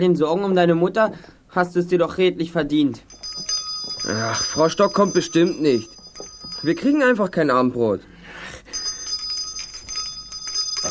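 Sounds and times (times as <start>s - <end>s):
speech: 0.0s - 3.2s, 4.0s - 6.0s, 6.6s - 8.6s
bell ringing with high-pitched metallic tone: 3.0s - 7.4s, 8.6s - 10.8s.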